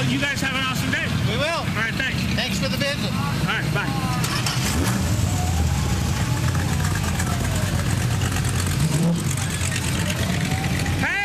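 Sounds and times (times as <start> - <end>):
1929 Ford Roadster engine rumbling and pulling away: 0.0 - 11.2
speech: 0.1 - 0.6
faint crowd chatter at a car cruise event: 3.0 - 11.2.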